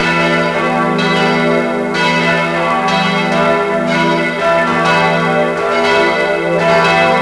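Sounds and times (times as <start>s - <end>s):
church bell ringing: 0.0s - 7.2s.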